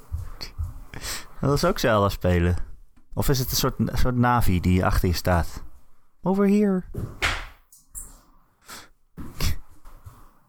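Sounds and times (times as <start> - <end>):
sneakers scuffing: 0.0 - 1.0, 9.2 - 10.4
speech: 1.0 - 7.2.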